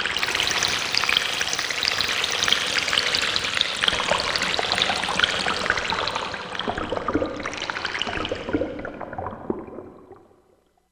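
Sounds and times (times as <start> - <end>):
water tone at C6: 0.2 - 10.5.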